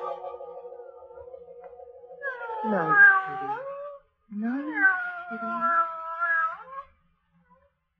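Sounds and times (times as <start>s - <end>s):
cat meowing and yowling: 2.2s - 4.0s, 4.6s - 6.9s.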